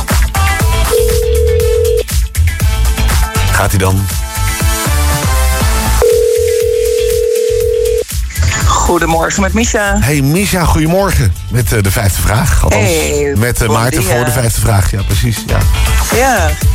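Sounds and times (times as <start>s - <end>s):
loud rhythmic music with thumping beats: 0.0s - 16.7s
telephone ringing tone of outgoing call to a quiz contestant: 0.9s - 2.1s, 6.0s - 8.0s
speech: 3.6s - 4.2s, 8.9s - 16.7s.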